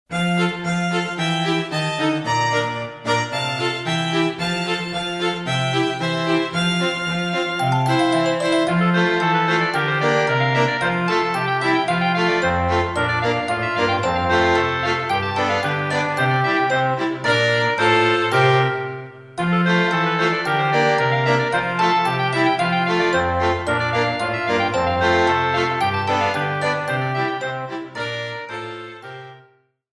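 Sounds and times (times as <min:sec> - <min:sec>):
instrumental carol: 0:00.1 - 0:29.7.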